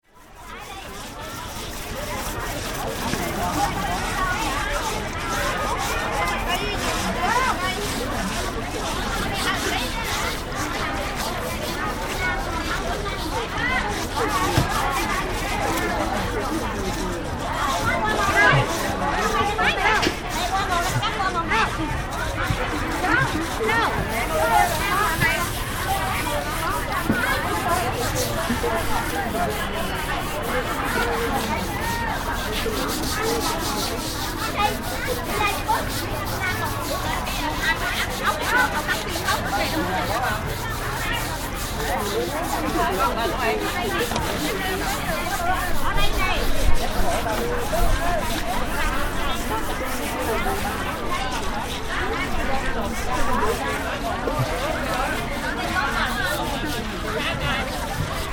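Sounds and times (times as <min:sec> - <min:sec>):
washing in Vietnam: 0:00.6 - 0:58.3.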